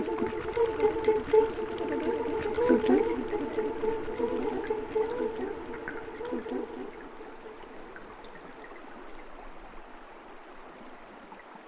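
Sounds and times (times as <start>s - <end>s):
warbling tones: 0.0s - 7.8s
river water flowing: 0.0s - 11.6s.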